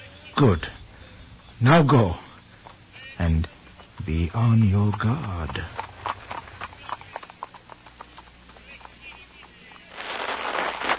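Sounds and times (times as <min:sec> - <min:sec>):
speech: 0:00.4 - 0:00.8, 0:01.6 - 0:02.2, 0:03.2 - 0:05.8
horses trotting with hooves clip-clopping: 0:02.2 - 0:10.9
broad rushing noise: 0:09.8 - 0:10.9.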